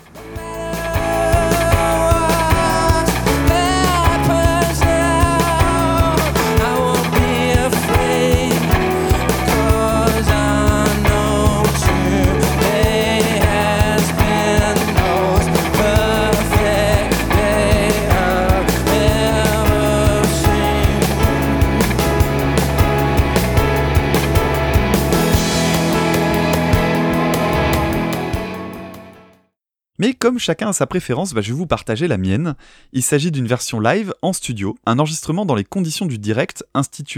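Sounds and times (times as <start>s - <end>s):
live rock band playing: 0.0s - 29.3s
offbeat syncopated electric guitar riff: 0.0s - 29.3s
speech: 30.3s - 37.1s.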